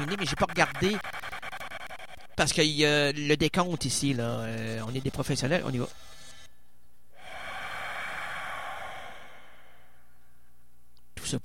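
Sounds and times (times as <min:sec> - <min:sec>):
strange heavy breath with an airy hiss: 0:00.0 - 0:02.4, 0:07.1 - 0:10.5
speech: 0:00.1 - 0:01.2, 0:02.4 - 0:06.0, 0:11.3 - 0:11.4.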